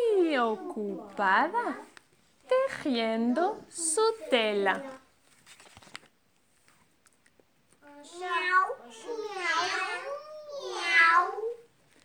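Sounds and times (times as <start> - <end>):
speech: 0.4 - 1.9, 2.7 - 5.0
cat meowing in drawn-out wavering cries: 8.1 - 11.6.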